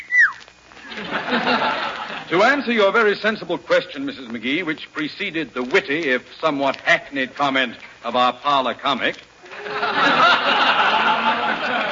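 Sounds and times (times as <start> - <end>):
person whistling: 0.0 - 0.4
laughter: 0.8 - 2.7, 9.4 - 11.9
speech: 1.3 - 10.6.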